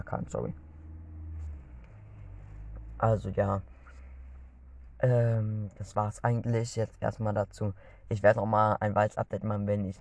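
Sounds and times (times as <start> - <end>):
road noise hiss inside a moving car: 0.0 - 6.0
engine rumbling inside a moving car: 0.0 - 9.9
speech: 0.1 - 0.7, 3.0 - 3.7, 5.0 - 9.9.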